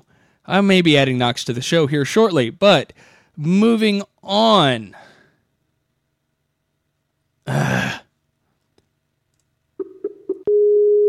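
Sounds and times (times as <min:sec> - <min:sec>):
speech: 0:00.5 - 0:05.0, 0:07.5 - 0:07.9
Skype call connecting tones: 0:09.8 - 0:11.0.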